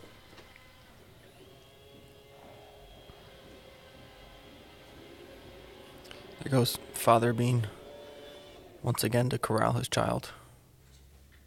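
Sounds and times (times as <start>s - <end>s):
robot vacuum cleaner motor humming with faint whine: 0.0s - 9.5s
speech: 6.4s - 7.8s, 8.8s - 10.4s.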